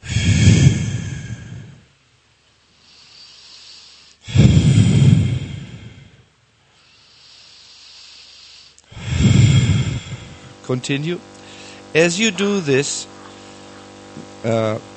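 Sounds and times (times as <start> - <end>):
forceful energetic exhales in a breathing exercise: 0.0 - 1.9, 2.8 - 6.2, 6.8 - 10.5
quiet inhales: 0.0 - 2.0, 2.7 - 10.6, 11.4 - 11.9, 13.2 - 13.9
speech: 10.7 - 11.3, 11.9 - 13.2, 14.2 - 14.9.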